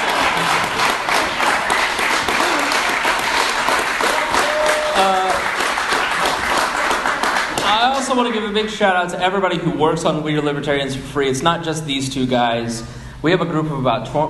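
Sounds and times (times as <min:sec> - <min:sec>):
large audience applauding: 0:00.0 - 0:08.4
speech: 0:08.1 - 0:14.2.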